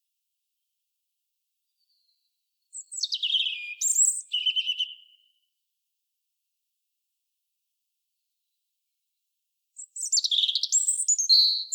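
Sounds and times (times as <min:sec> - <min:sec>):
European robin Erithacus rubecula song: 0:01.7 - 0:05.5, 0:09.8 - 0:11.7.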